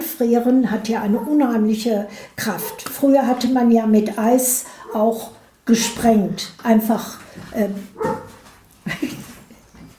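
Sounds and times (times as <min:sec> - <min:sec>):
speech: 0:00.2 - 0:08.2
dog barking and yelping: 0:01.1 - 0:01.5, 0:02.6 - 0:03.5, 0:04.8 - 0:05.2, 0:08.0 - 0:08.4.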